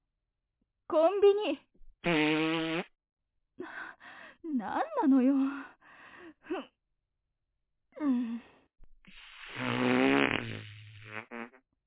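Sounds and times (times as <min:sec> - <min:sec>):
speech: 0:00.9 - 0:02.8, 0:04.4 - 0:05.7, 0:06.5 - 0:06.7
long loud buzzing fart: 0:02.0 - 0:02.9, 0:09.1 - 0:11.7.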